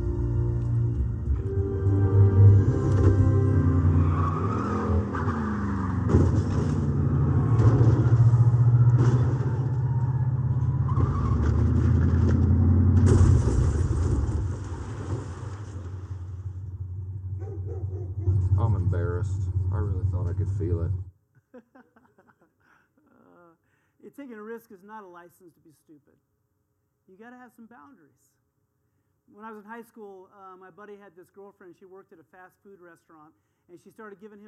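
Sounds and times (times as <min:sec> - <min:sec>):
car engine starting and running: 0:00.0 - 0:21.1
speech: 0:24.7 - 0:26.4, 0:27.1 - 0:28.4, 0:29.3 - 0:34.4.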